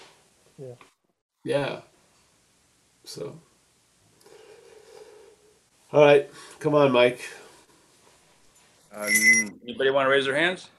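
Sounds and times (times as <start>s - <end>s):
speech: 0.6s - 1.9s, 3.0s - 3.5s, 5.9s - 7.4s, 8.9s - 10.7s
bell ringing: 9.0s - 9.5s.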